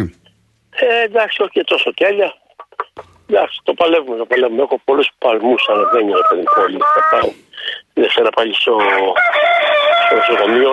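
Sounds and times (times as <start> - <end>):
speech: 0.0 - 0.2, 0.8 - 2.4, 3.3 - 10.7
rooster crowing: 9.2 - 10.6.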